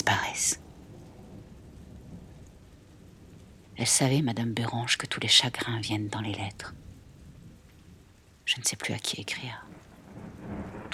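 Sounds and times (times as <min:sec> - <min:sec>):
deep thunder rumbling in a thunderstorm: 0:00.0 - 0:10.9
heavy rain pouring in a thunderstorm: 0:00.0 - 0:10.9
speech: 0:00.4 - 0:00.6, 0:03.8 - 0:06.9, 0:08.5 - 0:09.8.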